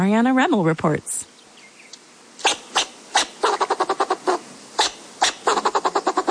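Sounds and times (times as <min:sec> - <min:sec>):
speech: 0:00.0 - 0:01.3
fox squirrel barking with raspy chucks: 0:02.4 - 0:06.3.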